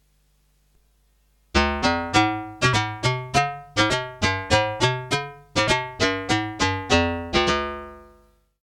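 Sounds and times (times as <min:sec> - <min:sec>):
Karplus-Strong plucked string synth: 0:01.6 - 0:08.3.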